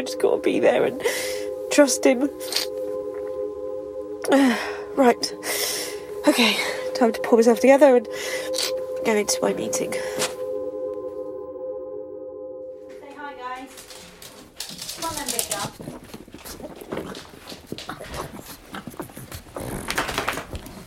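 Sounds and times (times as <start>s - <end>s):
speech: 0.0s - 2.8s, 4.2s - 10.2s
steady electronic tone: 0.0s - 14.3s
small female pug snorting, whining and yapping excitedly: 15.8s - 20.8s.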